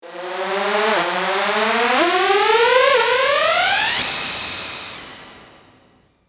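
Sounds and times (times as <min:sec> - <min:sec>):
rising siren sweep: 0:00.0 - 0:04.2.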